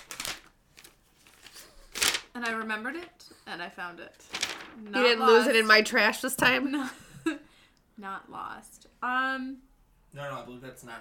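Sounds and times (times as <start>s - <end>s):
paper sheet rustling and crinkling as it is unfolded: 0.0s - 3.1s, 4.2s - 5.5s
speech: 2.4s - 7.4s, 8.0s - 10.9s.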